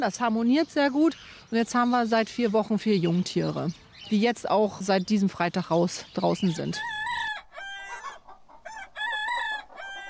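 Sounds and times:
speech: 0.0 - 7.0
hens clucking: 6.3 - 10.0
rooster crowing: 6.8 - 10.0.

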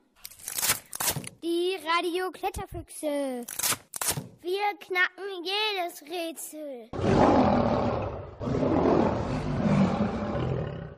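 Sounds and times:
speech: 1.4 - 3.8, 4.4 - 8.6
lion roaring: 7.0 - 10.9.

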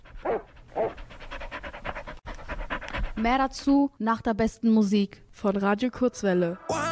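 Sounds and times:
dog panting while running around a studio: 0.0 - 3.6
speech: 3.2 - 6.8.

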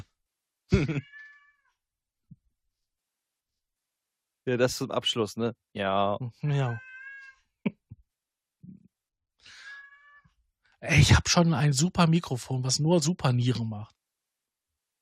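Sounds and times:
laughter: 0.7 - 1.0
speech: 0.7 - 1.2, 4.5 - 6.9, 10.8 - 14.0
16-year-old male cat meowing with drawn-out wavering cries: 1.0 - 1.7, 6.7 - 7.4, 9.6 - 10.4.

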